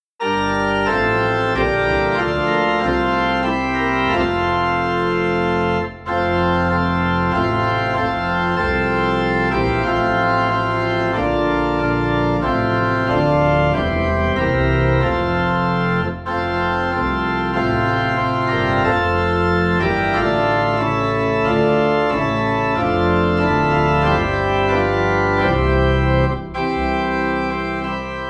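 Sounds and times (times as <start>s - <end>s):
organ playing a Christmas carol low in F: 0.2s - 28.2s.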